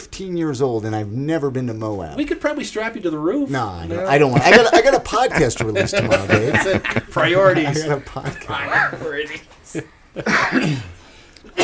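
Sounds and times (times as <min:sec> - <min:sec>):
speech: 0:00.2 - 0:11.6
laughter: 0:04.0 - 0:10.7
person coughing: 0:10.2 - 0:11.6.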